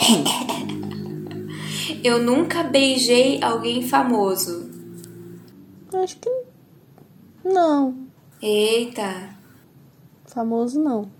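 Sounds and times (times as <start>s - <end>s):
small cough: 0.0s - 1.0s
speech: 0.1s - 0.6s, 2.0s - 4.7s, 5.9s - 6.5s, 7.4s - 9.4s, 10.3s - 11.1s.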